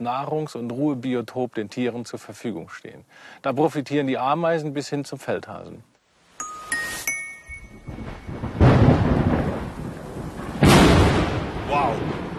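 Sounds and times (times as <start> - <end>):
speech: 0.0 - 5.9
bright metallic pings: 6.4 - 8.5
loud rolling thunder during a lightning storm: 7.7 - 12.3.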